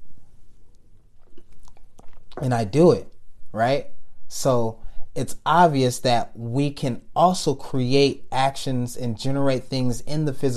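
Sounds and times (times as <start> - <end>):
person sipping coffee: 1.2 - 2.4
person swallowing coffee: 1.2 - 2.6
speech: 2.4 - 10.5.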